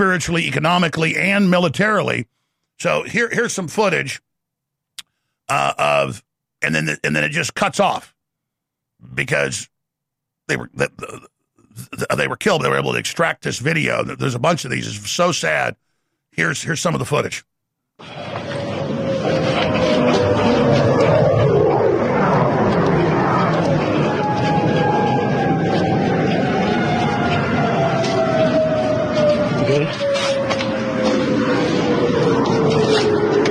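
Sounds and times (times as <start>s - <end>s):
speech: 0.0s - 4.3s, 5.5s - 8.1s, 9.0s - 9.7s, 10.5s - 18.5s
air raid sirens wailing: 18.0s - 33.4s.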